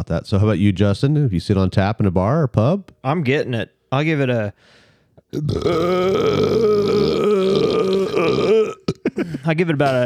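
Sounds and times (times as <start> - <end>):
speech: 0.0 - 7.7, 9.2 - 10.0
short breath: 4.6 - 5.2
long loud burp: 5.3 - 10.0.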